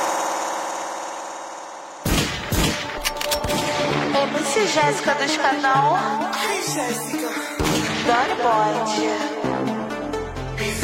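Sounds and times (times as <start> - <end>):
steady droning hum: 0.0 - 2.2
gunshots as people open fire: 2.0 - 4.4
speech: 4.2 - 9.7.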